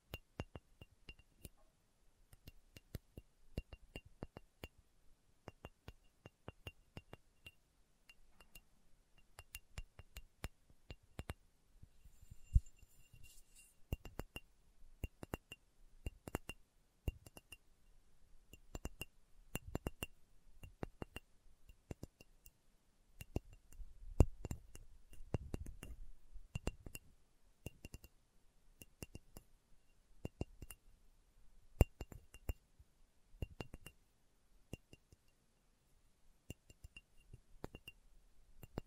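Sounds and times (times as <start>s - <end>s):
ASMR slow tapping on a hard surface, likely glass: 0.0s - 1.7s, 2.3s - 4.8s, 5.4s - 11.4s, 12.0s - 17.7s, 18.5s - 22.6s, 23.2s - 28.1s, 28.8s - 30.8s, 31.8s - 32.6s, 33.4s - 34.0s, 34.7s - 35.4s, 36.5s - 38.0s, 38.6s - 38.8s.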